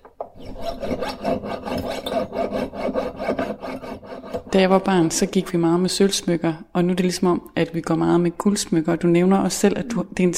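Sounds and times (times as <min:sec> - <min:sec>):
jeweler's saw cutting excess gold from a ring: 0:00.4 - 0:04.5
speech: 0:00.6 - 0:02.2, 0:04.5 - 0:10.3.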